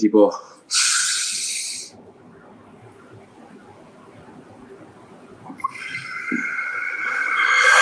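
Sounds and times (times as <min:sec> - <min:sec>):
speech: 0:00.0 - 0:00.8
forceful hissing breaths of a chest and belly breathing exercise: 0:00.6 - 0:02.0, 0:05.9 - 0:07.8.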